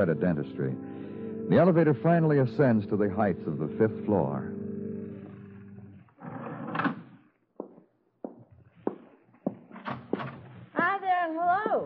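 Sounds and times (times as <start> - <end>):
speech: 0.0 - 4.6
footsteps thudding along a hard hallway floor: 5.1 - 5.5, 7.6 - 11.8
door scraping and clunking open: 5.2 - 7.3.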